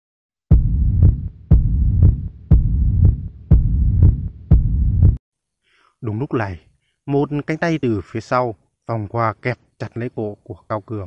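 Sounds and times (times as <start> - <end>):
heavy fast heartbeat: 0.5 - 5.2
speech: 6.0 - 11.0.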